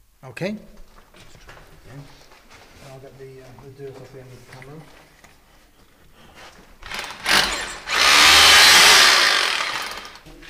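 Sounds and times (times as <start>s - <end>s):
speech: 0.2s - 0.8s, 2.9s - 5.0s
power drill bit reopening a hole to clear debris: 6.8s - 10.2s.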